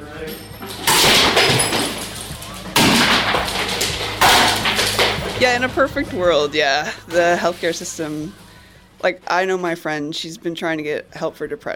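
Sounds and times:
debris clattering: 0.0s - 8.5s
smashing objects in a rage room: 0.3s - 5.9s
speech: 5.4s - 8.4s, 9.0s - 11.7s.

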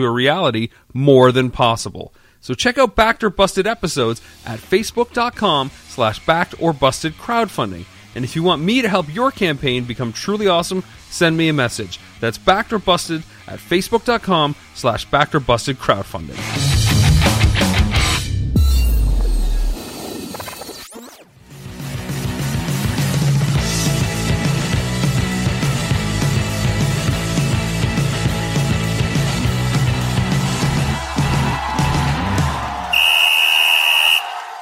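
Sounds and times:
speech: 0.0s - 16.9s
music: 3.8s - 33.0s
crowd-like clamor: 30.4s - 34.6s
loud shrill whistle blast: 32.9s - 34.5s.

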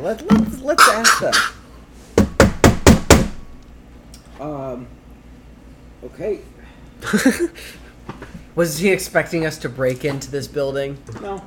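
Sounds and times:
speech: 0.0s - 1.6s, 4.4s - 5.0s, 6.0s - 7.8s, 8.6s - 11.4s
knocking on a door: 2.2s - 3.4s.

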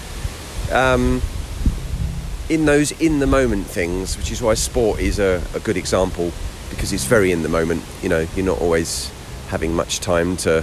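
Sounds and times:
wind blowing outdoors buffeting the microphone: 0.1s - 8.8s
speech: 0.7s - 1.4s, 2.5s - 10.6s
brief voice-like tonal sound: 6.8s - 7.4s.

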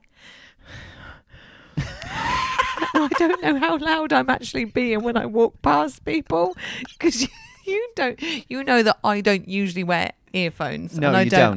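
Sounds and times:
heavy labored breathing from someone walking uphill during a mild asthma attack: 0.1s - 2.6s, 6.6s - 7.0s
laughter: 1.8s - 3.8s
speech: 2.9s - 11.5s.

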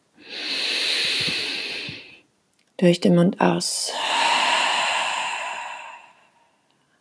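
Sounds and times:
deep inhale through the nose: 0.2s - 2.2s, 3.9s - 6.6s
speech: 2.8s - 4.1s.

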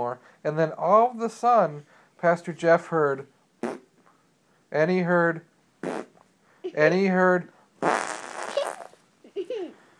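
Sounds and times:
speech: 0.1s - 3.4s, 4.7s - 5.5s, 6.8s - 7.9s
fart sound effect: 3.6s - 3.9s, 5.8s - 6.2s, 7.8s - 9.0s.

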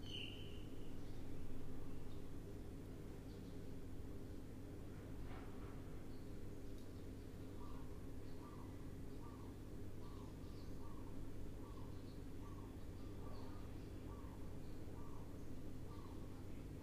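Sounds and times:
birds chirping in the early morning: 0.0s - 4.8s, 5.9s - 16.8s
low hum: 0.0s - 16.8s.

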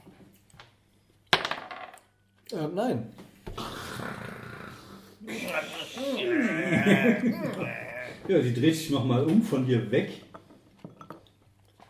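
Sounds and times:
dice clattering onto a hard table: 1.4s - 2.0s
speech: 2.5s - 3.2s, 5.2s - 10.3s
laughter: 5.2s - 8.3s.

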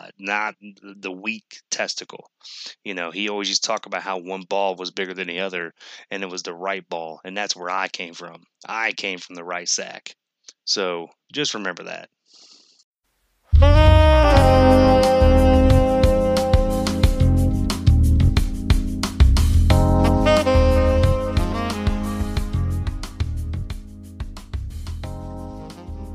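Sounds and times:
speech: 0.2s - 12.5s, 13.5s - 14.8s
background music with sustained tonal chords over a steady percussive beat: 13.6s - 26.1s.

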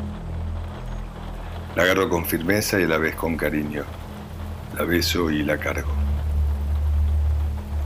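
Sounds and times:
deep low rumble: 0.0s - 7.8s
steady rain hiss: 0.0s - 7.8s
speech: 1.8s - 4.0s, 4.8s - 6.0s.

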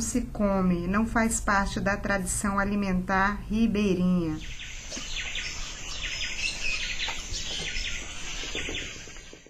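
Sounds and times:
speech: 0.0s - 5.2s
several birds calling and chirping: 4.3s - 9.4s.

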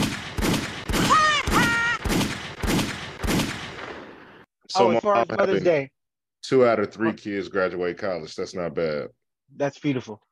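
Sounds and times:
gunshot sound effects: 0.0s - 4.4s
speech: 4.8s - 10.2s.

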